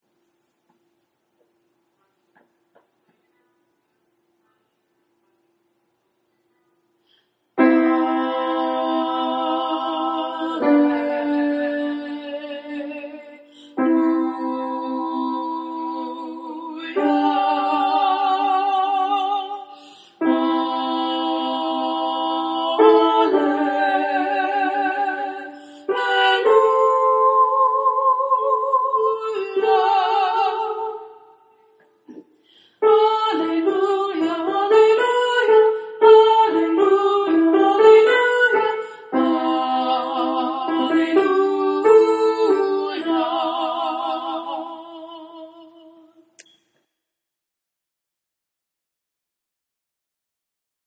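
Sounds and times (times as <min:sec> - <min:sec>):
alto and soprano singing an Alleluia in 6/4: 0:07.6 - 0:32.2, 0:32.8 - 0:46.4.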